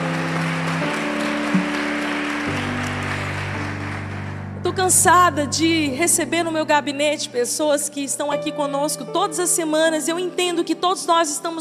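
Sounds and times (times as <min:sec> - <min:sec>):
audience applauding: 0:00.0 - 0:04.5
sustained organ or keyboard chords: 0:00.0 - 0:06.9
speech: 0:04.8 - 0:11.6.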